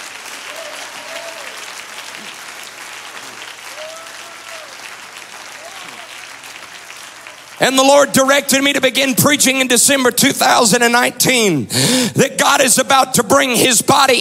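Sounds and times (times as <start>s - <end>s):
large audience clapping hands: 0.0s - 10.2s
speech: 7.6s - 14.1s.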